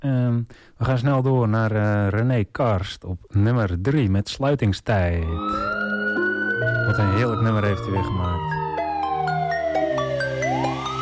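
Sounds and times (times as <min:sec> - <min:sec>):
speech: 0:00.0 - 0:05.8, 0:06.9 - 0:08.6
police car siren wailing: 0:05.2 - 0:11.0
low sustained tones: 0:05.4 - 0:11.0.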